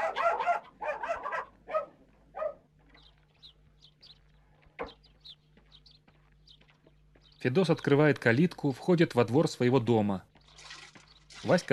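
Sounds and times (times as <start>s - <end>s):
dog barking in a village yard: 0.0s - 2.7s
speech: 7.4s - 10.3s, 11.4s - 11.7s.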